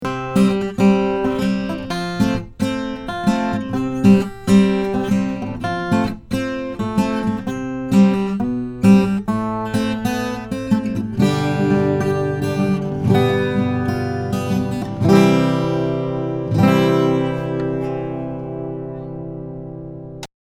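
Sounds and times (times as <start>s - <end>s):
Takamine guitar: 0.0s - 20.3s.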